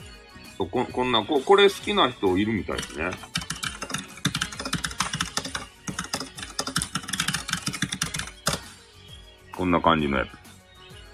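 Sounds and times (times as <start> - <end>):
speech: 0.6 - 3.4, 9.6 - 10.4
mechanical gaming keyboard being typed on: 2.8 - 8.7.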